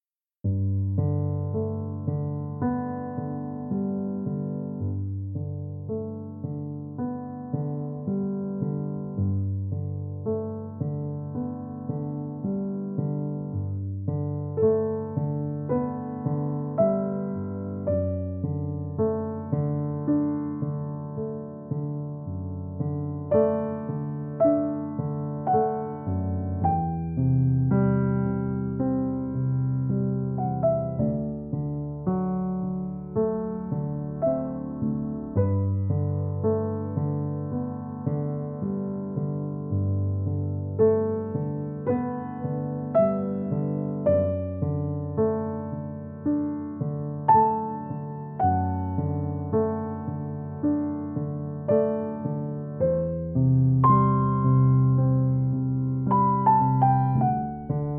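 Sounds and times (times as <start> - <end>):
calm and peaceful piano music: 0.4 - 57.9.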